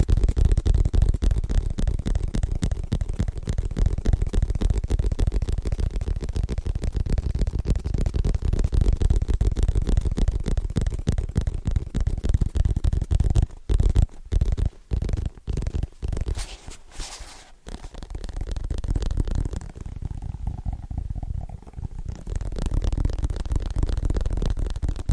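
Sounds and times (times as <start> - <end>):
fast tapping with a deep thumpy low end: 0.0 - 25.1.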